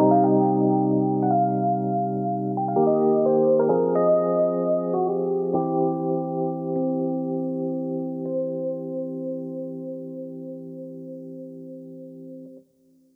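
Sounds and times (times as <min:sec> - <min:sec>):
Rhodes electric piano chords as pads: 0:00.0 - 0:12.6.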